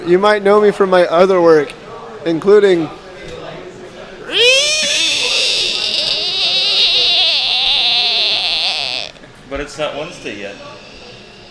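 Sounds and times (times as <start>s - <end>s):
speech: 0.0s - 3.0s, 9.6s - 10.8s
frog or toad screaming: 4.2s - 9.2s.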